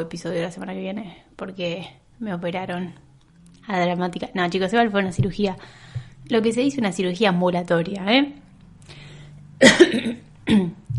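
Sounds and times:
speech: 0.0 - 3.0, 3.7 - 9.0, 9.6 - 10.8
person coughing: 9.6 - 10.9.

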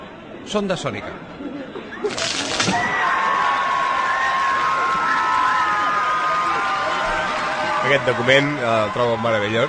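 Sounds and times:
speech: 0.5 - 3.0, 7.9 - 9.6
large crowd cheering at a town festival: 2.0 - 9.6
sharp cracking noise of ankles giving way in a human tower: 2.1 - 3.1.

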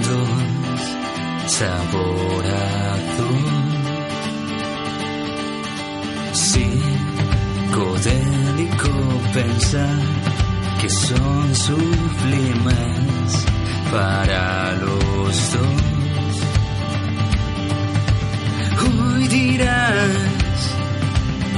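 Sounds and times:
male voice singing alternative rock: 0.0 - 4.4, 6.1 - 16.8, 18.3 - 21.5
layered guitars: 0.0 - 21.5
speech: 1.5 - 3.8, 6.5 - 7.1, 7.8 - 16.0, 18.8 - 20.4
steady drums: 6.4 - 21.5.

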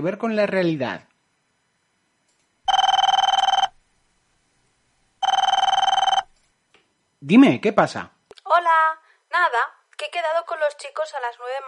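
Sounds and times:
speech: 0.0 - 1.1, 7.2 - 11.6
telephone ringing with trilling electronic bell: 2.7 - 3.8, 5.2 - 6.3.

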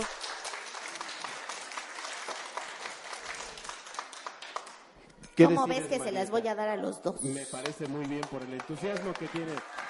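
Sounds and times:
audience applause: 0.0 - 4.8, 7.6 - 9.8
speech: 5.4 - 9.8.

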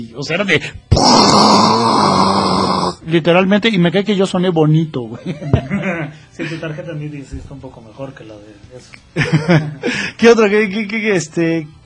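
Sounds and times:
speech: 0.0 - 2.4, 3.0 - 11.8
person vocally imitating a buzzy 8-bit video-game punch sound: 0.9 - 3.0
laughter: 5.1 - 6.7, 9.2 - 10.0.

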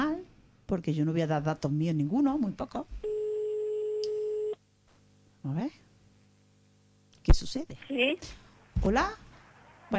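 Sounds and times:
speech: 0.7 - 3.1, 5.4 - 5.8, 7.2 - 9.2
telephone line tone while dialing a call: 3.0 - 4.6.

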